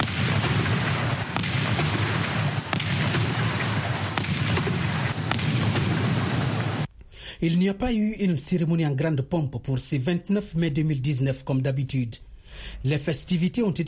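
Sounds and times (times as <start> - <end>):
cannon salute gunfire: 0.0 - 6.9
speech: 7.4 - 13.8.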